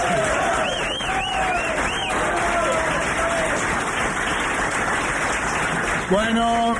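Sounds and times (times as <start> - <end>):
scattered voices and whoops: 0.0 - 3.7
sustained audience applause: 0.0 - 6.7.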